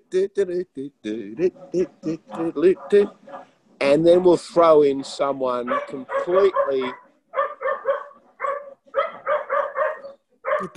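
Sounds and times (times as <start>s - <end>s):
speech: 0.1s - 7.0s, 10.6s - 10.7s
dogs barking: 1.4s - 3.6s, 5.5s - 10.7s.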